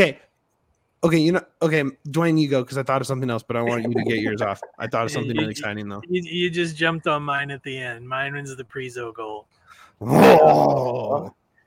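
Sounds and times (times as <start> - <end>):
speech: 0.0 - 0.2, 1.0 - 11.6
laughter: 3.6 - 5.8
dog growling bark: 10.0 - 11.3.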